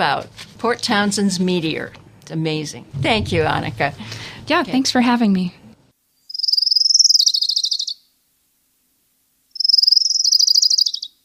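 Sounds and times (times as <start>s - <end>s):
speech: 0.0s - 5.6s
orange-crowned warbler song: 6.2s - 8.1s, 9.6s - 11.2s.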